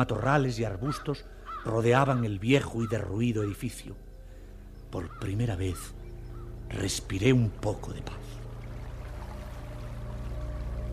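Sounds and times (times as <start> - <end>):
speech: 0.0 - 4.0, 4.9 - 6.0, 6.7 - 8.4
water pouring from three-spout fountain: 8.4 - 10.9.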